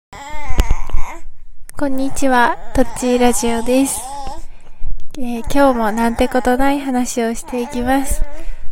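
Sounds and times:
speech: 1.8 - 4.1, 5.2 - 8.5
child's voice in the background: 1.8 - 4.4, 5.2 - 8.4.

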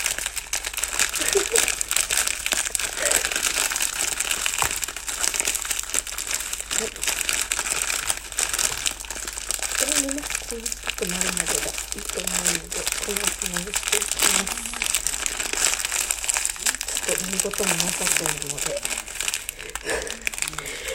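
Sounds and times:
crunching and crinkling of biscuits crushed into crumbs: 0.0 - 20.9
person murmuring faintly: 3.0 - 3.4, 9.8 - 15.0, 16.6 - 19.0, 19.6 - 20.9
speech: 17.6 - 19.0.

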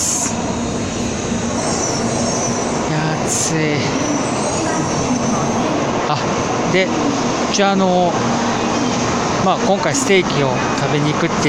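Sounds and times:
Shinkansen bullet train arriving at a station: 0.0 - 11.4
speech: 6.8 - 8.5, 9.4 - 11.4.

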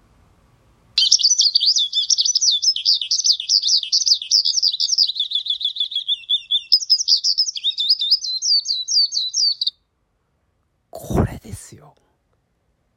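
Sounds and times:
skylark singing a rapid high-pitched warbling song: 1.0 - 9.7.

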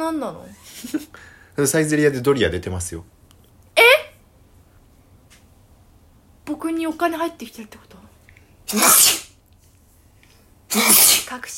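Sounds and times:
speech: 0.0 - 3.2, 6.8 - 7.9, 8.7 - 9.2, 11.3 - 11.5
loud sneeze: 8.7 - 9.4, 10.7 - 11.4.

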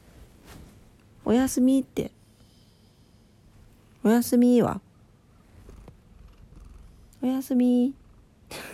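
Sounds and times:
speech: 1.3 - 2.2, 4.0 - 4.8, 7.2 - 8.7
sleepy cat purring: 5.3 - 8.7.

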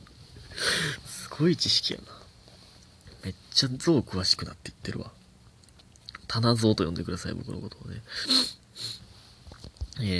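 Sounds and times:
person sniffling through a stuffy nose: 0.5 - 1.3, 8.1 - 9.1
speech: 1.4 - 2.1, 3.2 - 5.2, 6.3 - 8.9, 10.0 - 10.1.

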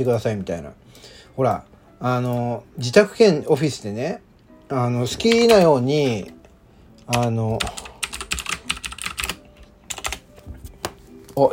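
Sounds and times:
speech: 0.0 - 6.4, 7.1 - 7.9, 11.4 - 11.5
typing on a computer keyboard in a home office: 5.2 - 5.7, 7.1 - 10.2.

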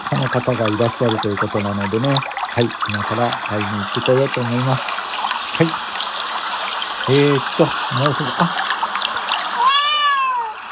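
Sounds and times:
small stream flowing through a village: 0.0 - 10.7
speech: 0.1 - 5.0, 5.6 - 5.9, 7.1 - 8.8
cat meowing: 9.6 - 10.7.

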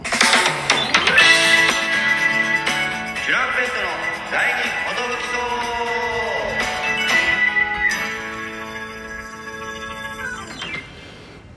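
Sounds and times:
brass-led trumpet radio jingle with backing instruments: 0.0 - 11.0
person speaking: 3.1 - 7.4.

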